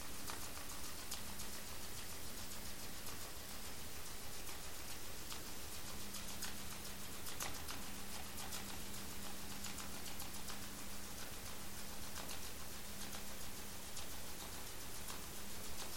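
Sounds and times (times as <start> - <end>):
low droning hum and hiss: 0.0 - 15.9
sperm whale echolocation clicks recorded by hydrophone in the Strait of Georgia: 0.2 - 15.9.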